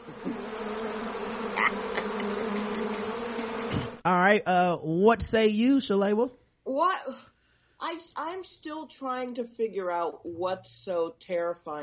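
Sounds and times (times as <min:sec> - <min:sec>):
bees buzzing: 0:00.0 - 0:04.0
speech: 0:04.0 - 0:11.8.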